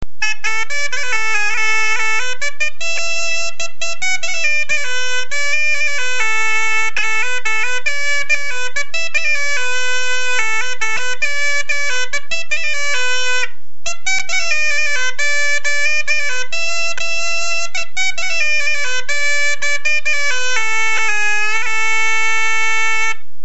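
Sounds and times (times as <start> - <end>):
bombarde: 0.0 - 23.4.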